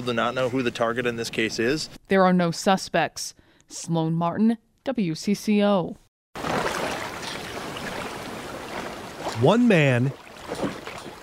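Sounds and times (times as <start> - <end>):
speech: 0.0 - 6.0, 9.4 - 10.7
water and wind rushing around a sailboat under way on the open ocean: 6.4 - 11.2.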